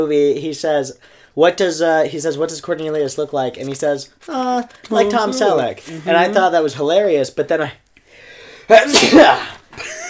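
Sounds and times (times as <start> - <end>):
speech: 0.0 - 7.8, 8.7 - 10.0
person sneezing: 8.8 - 9.6.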